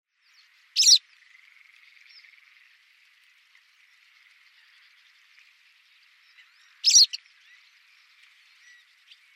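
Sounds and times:
White wagtail chirps: 0.3 - 2.6, 3.8 - 9.3.

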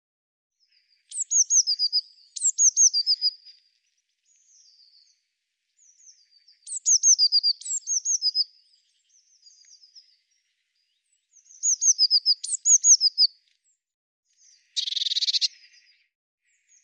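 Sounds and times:
faint thin Eurasian blue tit twitters: 0.6 - 5.2, 5.8 - 16.8
Eurasian blue tit sharp high downslurred calls: 0.7 - 3.6, 5.8 - 10.2, 11.4 - 13.4, 14.4 - 16.8.

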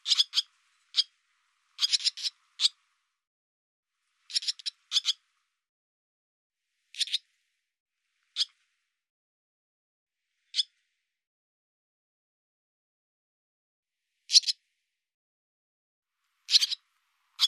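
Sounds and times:
barn swallow chip calls: 0.0 - 2.8, 4.2 - 5.2, 6.9 - 7.3, 8.3 - 8.6, 10.4 - 10.8, 14.3 - 14.6, 16.4 - 17.4.

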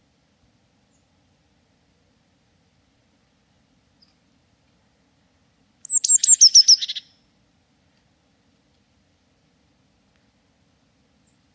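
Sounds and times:
bird calling with sharp downslurred notes and buzzy trill: 5.9 - 7.1.

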